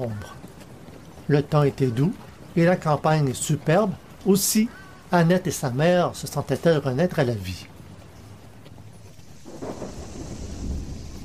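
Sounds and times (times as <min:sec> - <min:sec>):
speech: 0:00.0 - 0:00.4, 0:01.3 - 0:07.7
deep rumble of thunder: 0:00.0 - 0:11.2
heavy rain pouring: 0:00.0 - 0:11.2.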